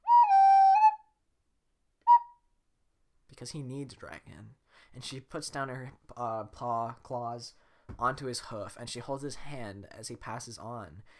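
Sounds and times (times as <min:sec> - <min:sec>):
person whistling a signal: 0:00.0 - 0:01.0, 0:02.1 - 0:02.3
speech: 0:03.4 - 0:11.1.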